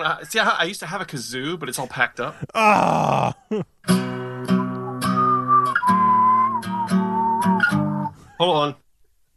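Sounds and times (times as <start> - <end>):
speech: 0.0 - 4.2
person whistling a short wavering tune: 4.2 - 8.2.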